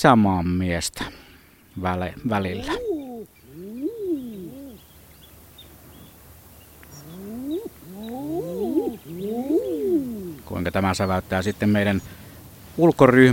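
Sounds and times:
speech: 0.0s - 1.2s, 1.8s - 2.8s, 10.5s - 12.2s, 12.8s - 13.3s
faint background bird chatter: 1.4s - 13.3s
common eider moaning cooing calls: 2.3s - 4.9s, 6.8s - 10.5s.

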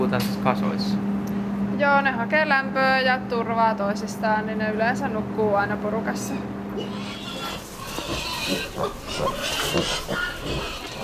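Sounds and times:
speech: 0.1s - 1.2s, 1.8s - 7.2s, 8.1s - 10.8s
steady busy barn background: 6.2s - 11.0s
sow grunting and snuffling in a pen: 6.3s - 11.0s
squeaky piglet noises in a pen: 6.8s - 11.0s.

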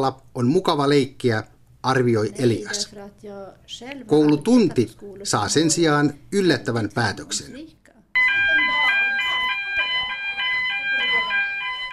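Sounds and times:
speech: 0.0s - 7.8s
school fire alarm siren going off: 8.2s - 11.9s.

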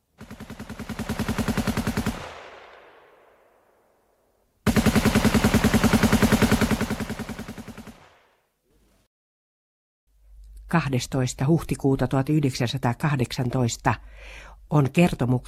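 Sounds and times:
rapid automatic gunfire in Helsinki: 0.2s - 3.3s, 4.6s - 8.3s
speech: 10.7s - 15.4s.

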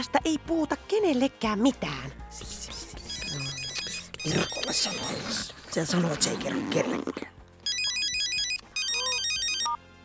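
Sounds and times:
speech: 0.0s - 3.4s, 4.2s - 7.3s
telephone ringtone with high electronic warbling: 3.1s - 5.4s, 7.6s - 9.8s.

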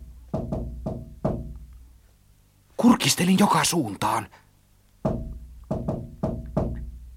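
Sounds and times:
sharp knocking on a shop window: 0.3s - 1.6s, 5.0s - 7.0s
speech: 2.9s - 4.4s.

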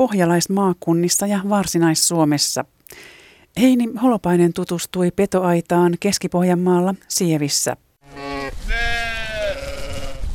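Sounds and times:
speech: 0.0s - 9.0s
sheep and lambs bleating on a sheep farm near Sievi, Finland: 8.0s - 10.3s.

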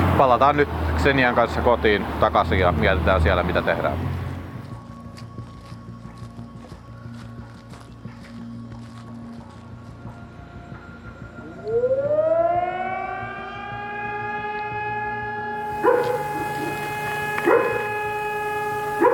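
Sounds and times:
speech: 0.2s - 4.2s
footsteps: 4.6s - 10.2s, 15.6s - 19.1s
distant air raid siren wailing: 11.3s - 19.1s.

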